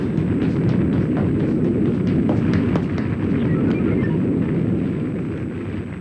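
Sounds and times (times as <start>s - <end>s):
crackling bursts: 0.0s - 5.9s
deep roaring rumble: 0.0s - 5.9s.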